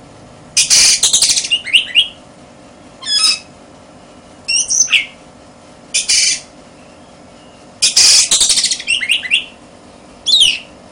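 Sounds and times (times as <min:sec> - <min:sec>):
faint hum: 0:00.0 - 0:10.8
Oriental magpie-robin song: 0:00.6 - 0:02.2, 0:03.0 - 0:03.5, 0:04.5 - 0:05.2, 0:06.0 - 0:09.6, 0:10.2 - 0:10.8.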